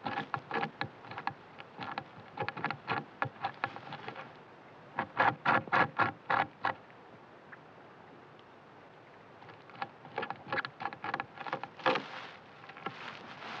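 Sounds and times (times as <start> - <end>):
Eurasian beaver Castor fiber at work, rasping scrapes: 0.0 - 4.4, 5.0 - 6.8, 9.5 - 13.5.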